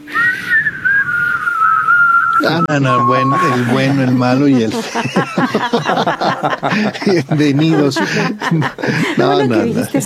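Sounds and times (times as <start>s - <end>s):
person whistling: 0.0s - 4.1s
speech: 2.4s - 10.0s
laughter: 2.5s - 10.0s.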